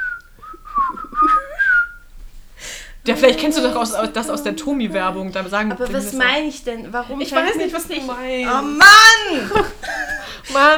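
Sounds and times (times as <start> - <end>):
person whistling a jaunty tune with sliding notes: 0.0 - 2.1
laughter: 0.6 - 1.9, 3.0 - 10.7
speech: 3.1 - 10.7.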